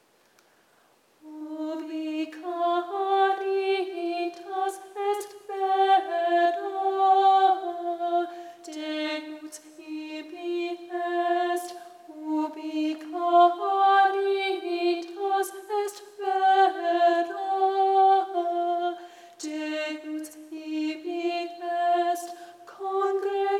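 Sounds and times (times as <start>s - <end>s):
soprano singing a choral piece: 1.2s - 23.5s.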